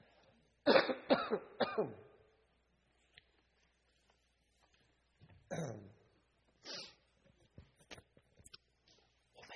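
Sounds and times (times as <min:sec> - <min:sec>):
person coughing harshly: 0:00.7 - 0:02.1
speech: 0:01.8 - 0:02.0
soft throat clearing: 0:05.5 - 0:06.0
person breathing: 0:06.6 - 0:07.1.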